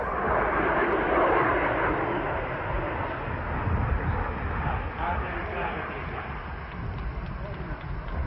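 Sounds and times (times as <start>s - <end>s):
Franco-British supersonic jet airliner roaring on landing: 0.0s - 8.2s
faint voices murmuring: 3.8s - 8.2s.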